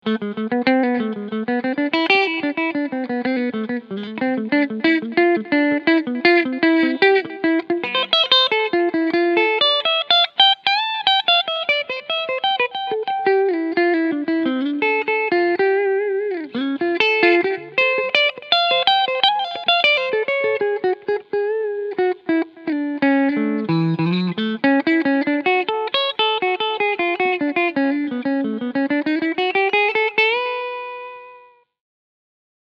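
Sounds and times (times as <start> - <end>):
Telecaster clean electric guitar picking on both pickups: 0.0 - 31.6.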